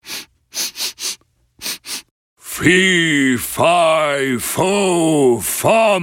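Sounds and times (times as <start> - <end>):
person sniffing the air in the role of a giant: 0.0 - 2.1
speech: 2.6 - 6.0.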